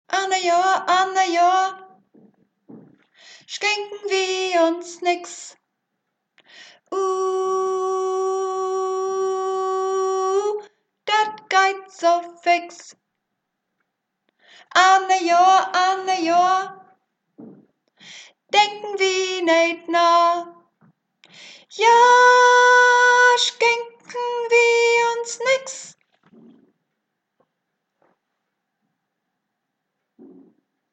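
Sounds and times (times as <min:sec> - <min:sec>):
soprano singing swing version: 0:00.1 - 0:05.6, 0:06.9 - 0:13.0, 0:14.7 - 0:17.6, 0:18.5 - 0:20.6, 0:21.7 - 0:26.0.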